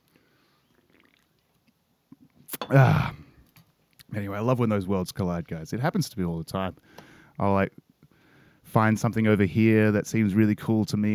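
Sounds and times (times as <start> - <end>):
sipping White Claw hard seltzer from a can: 0.9 - 1.4, 2.5 - 3.2
gulping hard seltzer: 2.5 - 3.2
speech: 2.6 - 3.2, 4.2 - 7.9, 8.7 - 11.1.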